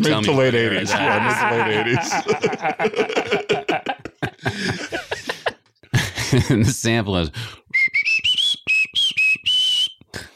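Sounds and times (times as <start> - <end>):
speech: 0.0 - 5.1, 6.3 - 7.6
laughter: 0.0 - 6.8
person whistling a short tune: 7.7 - 10.2.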